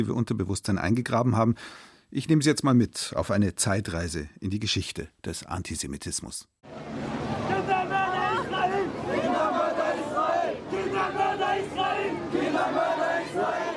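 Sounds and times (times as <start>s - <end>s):
speech: 0.0s - 6.9s
dense background of voices: 6.7s - 13.7s
large crowd of demonstrators chanting a slogan in unison: 7.0s - 13.7s.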